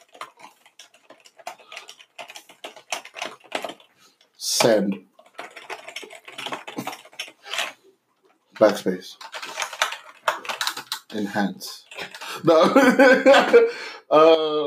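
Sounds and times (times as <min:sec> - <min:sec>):
typing on a computer keyboard: 0:00.0 - 0:03.9, 0:04.6 - 0:12.6
speech: 0:04.4 - 0:05.1, 0:08.6 - 0:09.3, 0:11.1 - 0:14.6.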